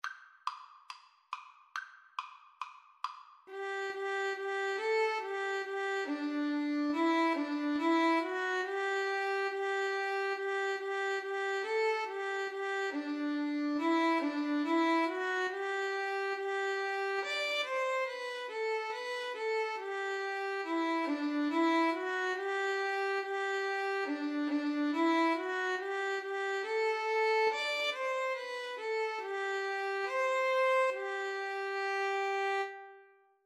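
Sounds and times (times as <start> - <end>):
cello: 3.5 - 33.1
viola duet: 3.5 - 33.2.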